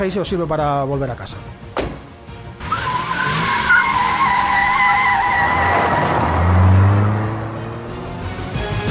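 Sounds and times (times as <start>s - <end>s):
speech: 0.0s - 1.6s
driverless car tires squealing in a skid: 2.6s - 7.1s
car engine revving hard as the vehicle speeds off: 2.6s - 8.8s.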